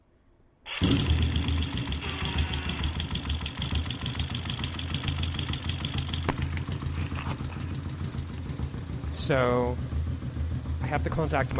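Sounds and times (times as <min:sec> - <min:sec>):
engine cranking and catching: 0:00.7 - 0:08.7
engine idling with a rough pulsing rumble: 0:00.7 - 0:11.5
speech: 0:09.3 - 0:09.9, 0:10.9 - 0:11.5.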